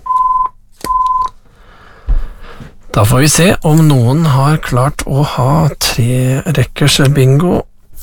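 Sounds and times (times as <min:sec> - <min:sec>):
telephone ringing with two short electronic tones during a bingo game: 0:00.0 - 0:01.3
speech: 0:02.9 - 0:07.7.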